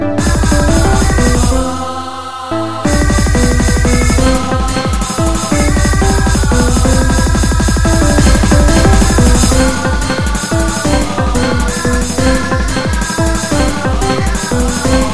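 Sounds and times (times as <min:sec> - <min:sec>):
musical stabs: 0:00.2 - 0:15.1.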